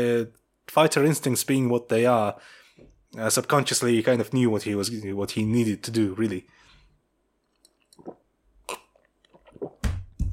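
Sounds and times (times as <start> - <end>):
speech: 0.0 - 6.6
swallowing clicks: 7.4 - 10.0
sipping coffee with soft slurping: 7.9 - 9.8.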